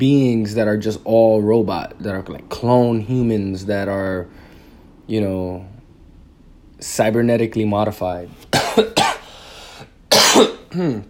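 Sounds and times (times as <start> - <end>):
speech: 0.0 - 4.4, 5.1 - 5.7, 6.8 - 9.0, 10.3 - 11.0
person coughing: 8.5 - 11.0
throaty sound: 10.1 - 11.0.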